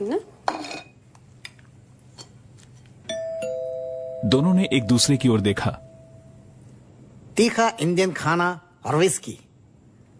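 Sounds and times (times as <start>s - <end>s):
speech: 0.0s - 0.3s, 4.3s - 5.9s, 7.4s - 9.4s
dishes and cutlery clinking at a dining table during a meal: 0.4s - 1.0s, 2.1s - 2.9s.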